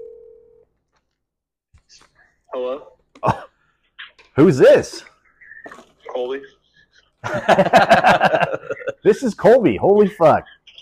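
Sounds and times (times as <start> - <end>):
phone ringback tone: 0.0 - 0.6
speech: 1.9 - 3.5, 4.4 - 5.1, 6.2 - 6.6, 7.2 - 10.6
laughter: 6.5 - 9.2.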